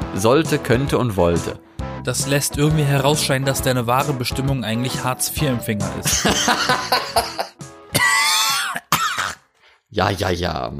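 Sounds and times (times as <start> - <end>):
speech: 0.1 - 7.6, 10.0 - 10.7
laughter: 6.0 - 7.6
person coughing harshly and raspily: 6.1 - 9.5
throat clearing: 7.9 - 9.5.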